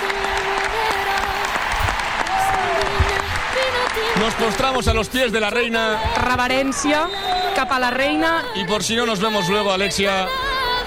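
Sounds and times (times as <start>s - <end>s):
audience ovation of applause in tribute to a departing football player: 0.0s - 8.5s
speech: 4.2s - 10.4s.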